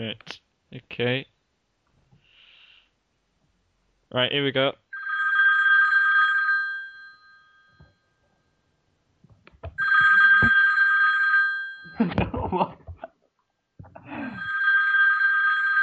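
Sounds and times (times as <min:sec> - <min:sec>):
speech: 0:00.0 - 0:01.3, 0:04.1 - 0:04.8, 0:12.0 - 0:12.8
telephone ringing tone: 0:05.0 - 0:08.1, 0:09.8 - 0:12.0, 0:14.3 - 0:15.8.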